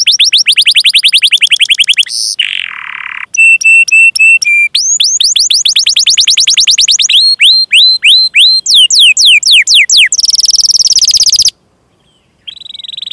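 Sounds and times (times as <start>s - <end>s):
canary singing vigorously: 0.0s - 13.1s.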